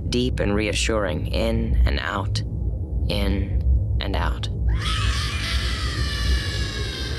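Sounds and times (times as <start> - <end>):
constant low rumble: 0.0 - 7.1
speech: 0.1 - 2.5, 3.1 - 5.4
inhuman voice wailing with a harsh overtone-rich edge: 4.7 - 7.1.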